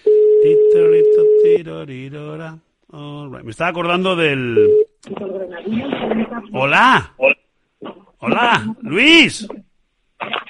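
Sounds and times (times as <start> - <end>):
long beep of an outgoing call's ringing tone: 0.0 - 1.5, 4.6 - 4.9
speech: 0.4 - 7.4, 8.2 - 10.4.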